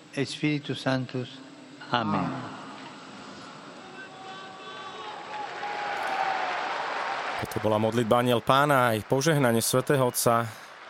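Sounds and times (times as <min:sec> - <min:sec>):
speech: 0:00.2 - 0:02.6, 0:07.6 - 0:10.6
large crowd of pilgrims applauding in a square: 0:04.6 - 0:10.8.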